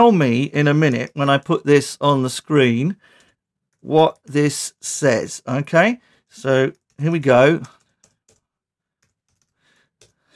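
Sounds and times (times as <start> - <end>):
speech: 0.0 - 3.2, 3.8 - 7.8
typing on a computer keyboard: 6.7 - 10.2.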